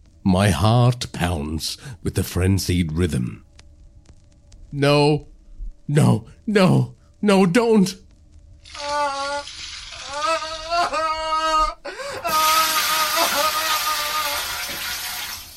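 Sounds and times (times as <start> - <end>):
speech: 0.2 - 3.5, 4.7 - 5.3, 5.9 - 8.0
person crying out in strained wavering tones: 8.7 - 15.0
icy-cold water poured from a bucket onto a person: 9.4 - 10.1, 12.4 - 15.5.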